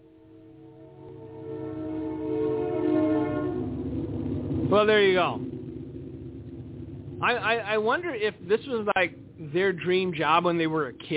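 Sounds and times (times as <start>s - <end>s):
train horn blast: 0.0s - 5.6s
rumble of passing train: 0.0s - 11.1s
speech: 4.7s - 5.5s, 7.2s - 11.1s.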